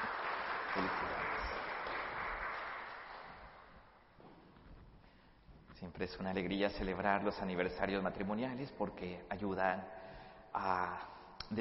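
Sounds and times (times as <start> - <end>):
audience applauding: 0.0 - 4.0
speech: 5.8 - 11.6.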